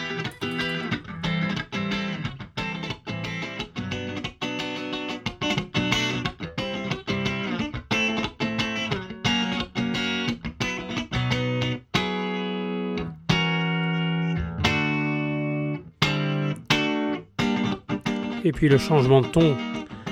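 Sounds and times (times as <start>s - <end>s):
two overdriven electric guitars playing solo lines: 0.0s - 20.1s
steady backing music: 14.4s - 15.5s
speech: 18.5s - 19.8s.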